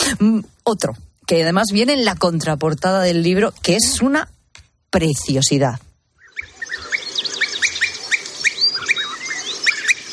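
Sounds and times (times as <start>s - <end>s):
speech: 0.1s - 5.9s
European bee-eaters calling in a busy chorus: 6.1s - 10.1s.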